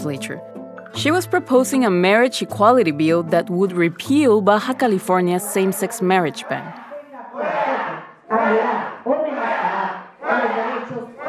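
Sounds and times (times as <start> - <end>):
speech: 0.0 - 6.8
large angry protest crowd chanting in the state legislature: 6.3 - 11.2.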